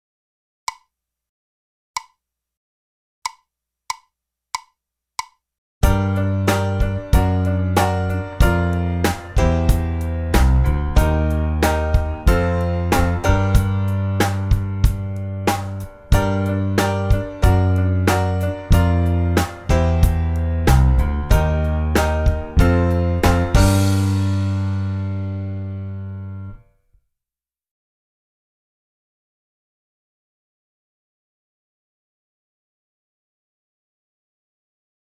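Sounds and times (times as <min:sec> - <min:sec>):
minor key music with descending bass: 0:05.8 - 0:26.6.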